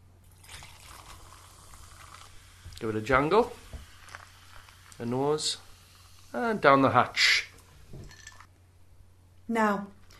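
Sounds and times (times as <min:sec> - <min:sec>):
classic Indian tonic water poured into a glass of gin: 0:00.3 - 0:05.0
fizzing hiss of tonic water: 0:00.4 - 0:08.1
speech: 0:02.8 - 0:03.6, 0:05.0 - 0:05.7, 0:06.3 - 0:07.4, 0:09.5 - 0:10.0.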